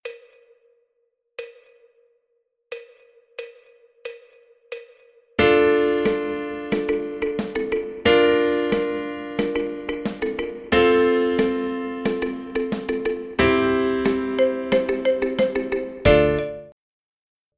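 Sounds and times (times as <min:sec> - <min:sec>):
slow piano intro: 0:05.4 - 0:16.8.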